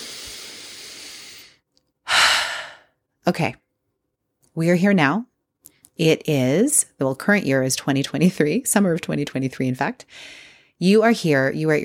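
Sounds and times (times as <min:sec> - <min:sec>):
collective deep breath: 0:00.0 - 0:03.0, 0:10.1 - 0:10.8
speech: 0:03.3 - 0:03.6, 0:04.6 - 0:05.3, 0:06.0 - 0:11.8.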